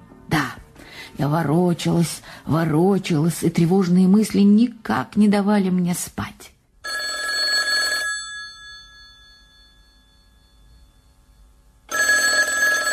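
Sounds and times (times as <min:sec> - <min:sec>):
speech: 0:01.1 - 0:06.5
telephone ringing: 0:06.8 - 0:12.9.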